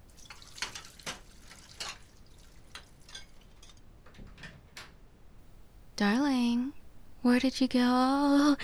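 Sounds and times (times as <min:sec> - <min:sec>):
shower water running: 0:00.0 - 0:04.6
speech: 0:06.0 - 0:08.6.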